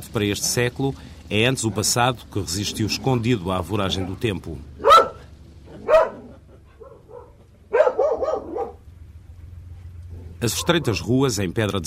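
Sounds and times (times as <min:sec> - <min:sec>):
speech: 0:00.0 - 0:04.8, 0:10.4 - 0:11.8
low steady outdoor hum: 0:00.0 - 0:11.8
dog barking in a narrow worn stone village street: 0:04.8 - 0:08.8, 0:10.2 - 0:11.1.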